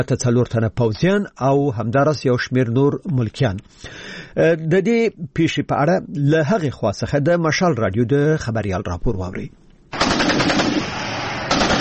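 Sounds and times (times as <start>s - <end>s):
speech: 0.0s - 9.6s
heavy-weapons machine-gun bursts at the Pakistan–Afghanistan border: 10.0s - 11.8s.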